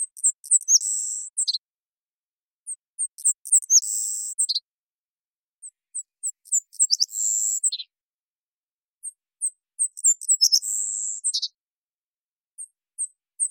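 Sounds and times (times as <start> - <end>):
Savannah sparrow Passerculus sandwichensis song in Washington: 0.0 - 1.7, 2.6 - 4.7, 5.6 - 8.0, 9.0 - 11.7, 12.5 - 13.4.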